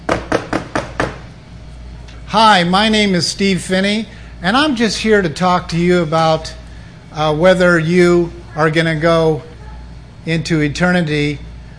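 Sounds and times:
knocking on a door: 0.0s - 1.2s
speech: 2.3s - 6.6s, 7.2s - 9.5s, 10.2s - 11.5s.

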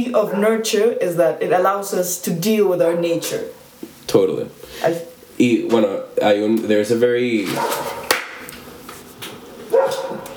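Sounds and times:
speech: 0.0s - 8.0s
dog barking: 7.6s - 8.1s, 9.7s - 10.3s.

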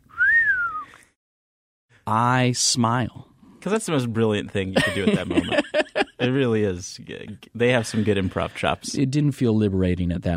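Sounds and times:
audience member whistling during a stage performance: 0.0s - 1.0s
speech: 2.1s - 10.3s
laughter: 4.8s - 6.7s, 7.6s - 9.1s.

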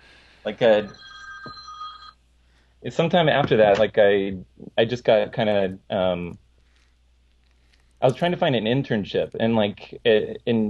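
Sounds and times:
speech: 0.4s - 1.6s, 2.8s - 6.4s, 8.0s - 10.6s
phone ringing with high electronic tone: 0.6s - 2.2s.

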